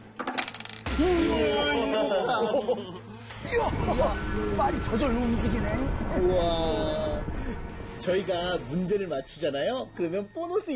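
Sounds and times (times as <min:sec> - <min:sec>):
dice thrown and rolling: 0:00.2 - 0:00.9
excited voices: 0:01.0 - 0:04.2
laughter: 0:01.8 - 0:03.7
speech: 0:02.7 - 0:07.1, 0:08.0 - 0:10.7.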